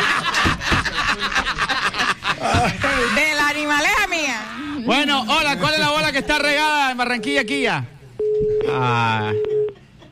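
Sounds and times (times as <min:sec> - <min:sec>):
laughter: 0:00.0 - 0:06.8
speech: 0:02.6 - 0:09.6
telephone busy tone after a dropped call: 0:08.2 - 0:10.1.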